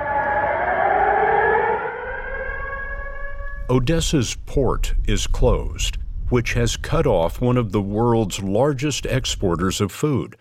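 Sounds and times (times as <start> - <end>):
air raid siren wailing in Odessa Ukraine: 0.0 - 3.9
speech: 3.7 - 10.4.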